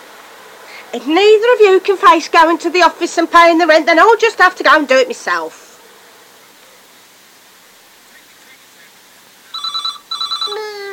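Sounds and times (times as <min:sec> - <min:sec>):
speech: 0:00.9 - 0:05.6
telephone double ring with a rapid trilling bell: 0:09.5 - 0:10.9.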